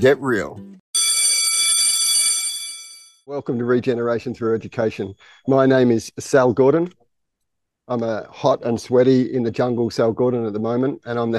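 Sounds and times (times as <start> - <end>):
speech: 0.0 - 0.7, 3.3 - 7.0, 7.9 - 11.3
school bell ringing: 1.0 - 3.2.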